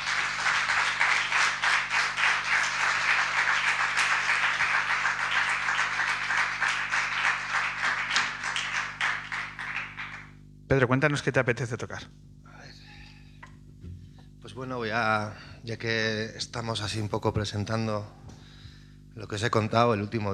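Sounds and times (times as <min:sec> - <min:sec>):
moderately sized audience applauding: 0:00.0 - 0:10.4
speech: 0:10.7 - 0:12.3, 0:14.6 - 0:18.2, 0:19.2 - 0:20.3.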